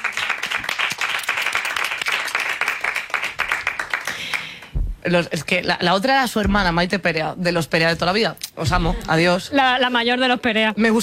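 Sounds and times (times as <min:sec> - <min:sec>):
crowd applauding with dense overlapping claps: 0:00.0 - 0:04.7
speech: 0:05.0 - 0:11.0.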